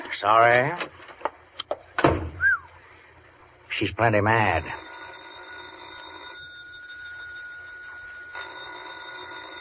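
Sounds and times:
speech: 0.1 - 0.9, 3.8 - 4.9
old-fashioned telephone bell ringing: 4.4 - 9.5.

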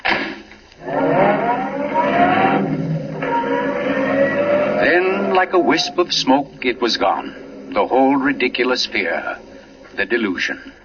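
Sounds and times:
roadster engine revving as the car pulls away: 0.8 - 10.8
speech: 5.4 - 9.4, 10.0 - 10.8.

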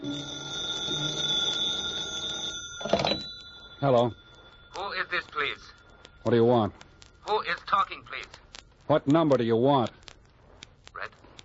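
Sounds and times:
telephone bell ringing in a room: 0.0 - 6.7
speech: 3.8 - 4.2, 5.1 - 10.0.

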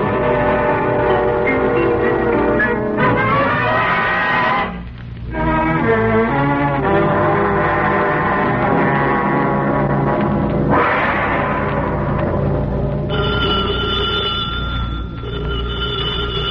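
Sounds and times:
dense busy musical background: 0.0 - 16.4
telephone bell ringing: 13.1 - 16.4.

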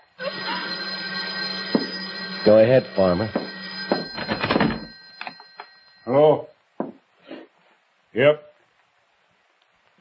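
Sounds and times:
telephone ringing: 0.2 - 6.1
speech: 2.5 - 3.4, 8.2 - 8.5.

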